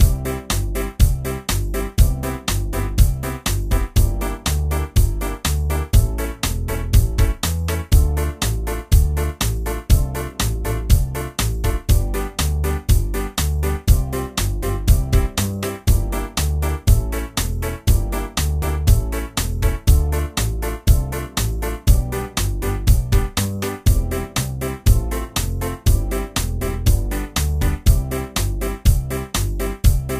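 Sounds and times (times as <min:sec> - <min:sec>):
map theme music: 0:00.0 - 0:30.1.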